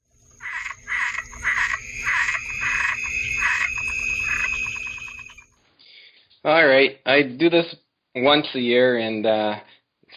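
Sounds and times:
steady high-pitched insect-like drone: 0:00.0 - 0:05.5
frog croaking in raspy pulses: 0:00.3 - 0:05.5
speech: 0:06.5 - 0:10.1.

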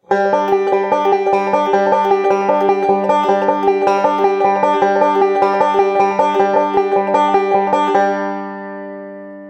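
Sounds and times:
fingerpicked forward roll played on repeat: 0:00.1 - 0:08.2.

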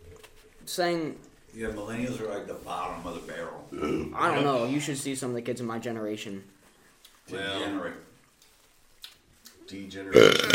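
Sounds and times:
speech: 0:00.7 - 0:06.6, 0:07.3 - 0:08.1, 0:09.7 - 0:10.5
long croaking burp: 0:03.7 - 0:04.2, 0:10.1 - 0:10.5.

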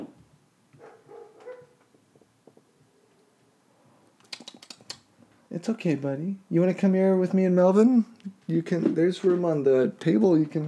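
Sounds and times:
dogs barking outside: 0:00.7 - 0:03.5
sharp clicking: 0:04.2 - 0:05.1
speech: 0:05.6 - 0:10.6.

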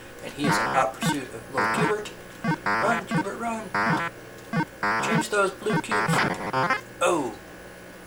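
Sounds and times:
faint hum: 0:00.0 - 0:08.0
video game character's garbled synthetic cursing: 0:00.4 - 0:04.1, 0:04.8 - 0:07.3
speech: 0:00.4 - 0:04.2, 0:04.8 - 0:07.4.

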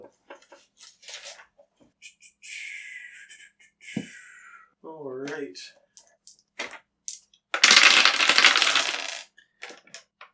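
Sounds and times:
speech: 0:05.4 - 0:05.8
many dice tumbling across a hard surface: 0:06.0 - 0:10.1.

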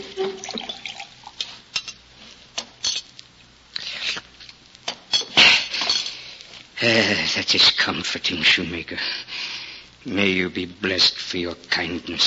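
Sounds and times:
tea pouring and trickling into a glass: 0:00.0 - 0:01.5
glass clinking and knocking as it is set down and handled: 0:00.0 - 0:02.0, 0:02.8 - 0:03.1, 0:05.1 - 0:06.2
speech: 0:06.8 - 0:09.2, 0:10.0 - 0:12.2.

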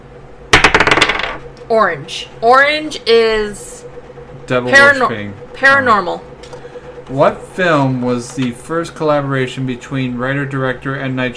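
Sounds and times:
dice rolled onto a game board: 0:00.6 - 0:01.4
speech: 0:01.7 - 0:03.9, 0:04.5 - 0:06.3, 0:07.1 - 0:11.3.

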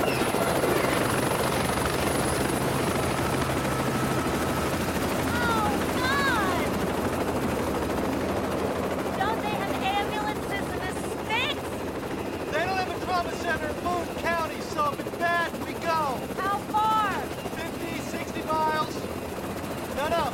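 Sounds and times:
bird-like chirps: 0:00.0 - 0:00.4
helicopter rotor noise: 0:00.0 - 0:20.3.

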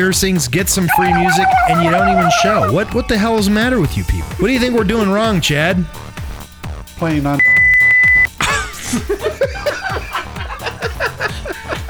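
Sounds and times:
speech: 0:00.0 - 0:06.1, 0:07.0 - 0:07.4, 0:08.9 - 0:09.3
rhythmic thumping low beat: 0:00.0 - 0:11.8
snickering laughter: 0:00.9 - 0:04.4, 0:07.4 - 0:11.8
short steady censor beep: 0:07.4 - 0:08.3.

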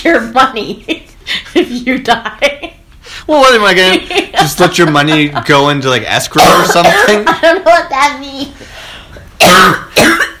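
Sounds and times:
speech: 0:00.0 - 0:02.6, 0:03.2 - 0:08.6, 0:09.4 - 0:10.2
laughter: 0:03.8 - 0:07.8
rough throaty coughs into the microphone: 0:09.4 - 0:10.3.

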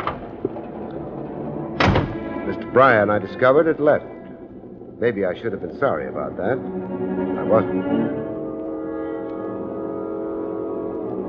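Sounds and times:
bedroom door clicking and thudding as it opens or closes: 0:00.0 - 0:02.5
low room hum: 0:00.0 - 0:11.2
speech: 0:02.5 - 0:04.2, 0:05.0 - 0:08.2.

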